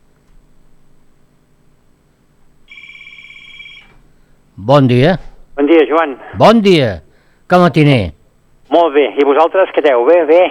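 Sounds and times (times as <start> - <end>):
low hiss: 0.4 - 10.5
telephone ringing for an incoming call: 2.7 - 4.0
speech: 4.6 - 10.5.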